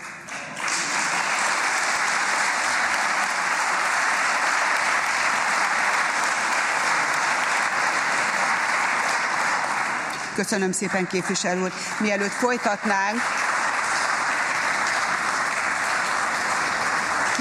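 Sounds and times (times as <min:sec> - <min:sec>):
large gathering applauding in parliament chamber: 0:00.0 - 0:17.4
speech: 0:10.4 - 0:13.4.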